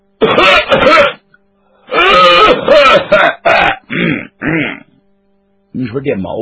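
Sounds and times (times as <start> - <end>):
person loudly imitating a booming throat-clearing cough: 0.2 - 1.2, 2.0 - 4.9
speech: 2.9 - 3.4, 5.9 - 6.3.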